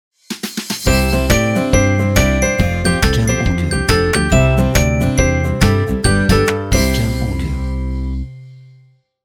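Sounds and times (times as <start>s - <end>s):
upbeat optimistic positive logo music: 0.6s - 8.8s.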